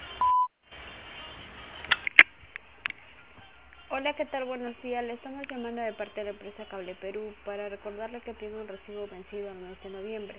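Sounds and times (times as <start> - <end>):
voicemail beep tone: 0.2 - 0.5
speech: 4.0 - 10.3.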